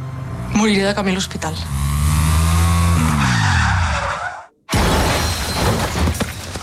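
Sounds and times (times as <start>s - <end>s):
speech: 0.6s - 1.9s
car skidding while overtaking with shrill tire squeal: 2.9s - 4.5s
crashing impact with another car: 4.7s - 6.6s
scattered debris from a car crash: 4.7s - 6.6s.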